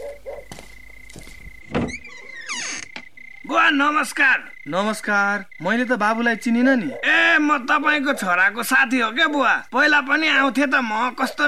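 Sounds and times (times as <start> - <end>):
door thunk: 1.4 - 3.1
door being opened creaking and squealing: 1.4 - 3.4
door clicks: 1.6 - 3.1
speech: 3.6 - 11.4.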